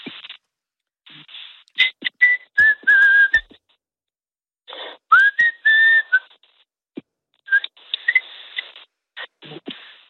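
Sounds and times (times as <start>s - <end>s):
person whistling a melody: 1.8s - 3.6s, 5.1s - 6.3s, 7.5s - 8.3s.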